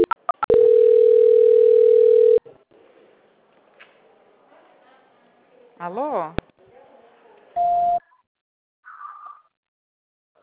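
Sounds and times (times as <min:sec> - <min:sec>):
telephone tone while a call is being transferred: 0:00.0 - 0:02.4
speech: 0:05.9 - 0:06.5.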